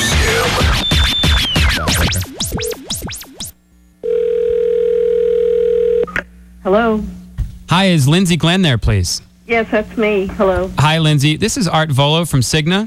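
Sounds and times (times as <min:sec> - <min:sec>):
swooping warbling electronic sweeps: 0:00.0 - 0:03.6
steady continuous telephone dial tone: 0:04.0 - 0:06.2
speech: 0:07.8 - 0:12.8.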